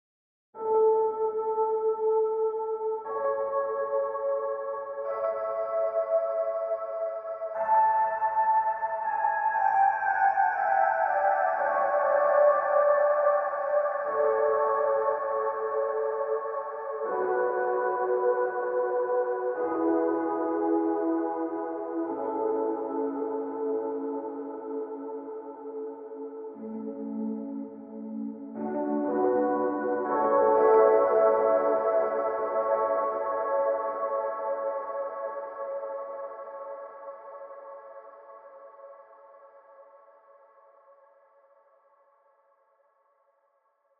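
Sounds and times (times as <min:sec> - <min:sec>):
electric piano with wet effect: 0:00.6 - 0:38.1.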